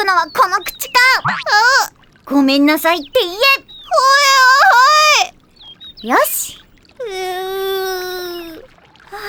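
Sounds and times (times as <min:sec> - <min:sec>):
speech: 0:00.1 - 0:04.2, 0:06.0 - 0:06.6
young girl crying: 0:07.0 - 0:08.6.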